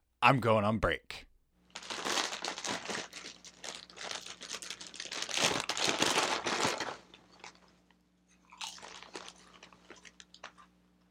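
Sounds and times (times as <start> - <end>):
speech: 0.2 - 1.3
bag of Takis chips being torn open: 1.7 - 7.6, 8.5 - 10.6
loud dense plastic crinkling of a chip bag: 1.7 - 7.8, 8.5 - 10.7
rustling and crunching: 1.7 - 10.7.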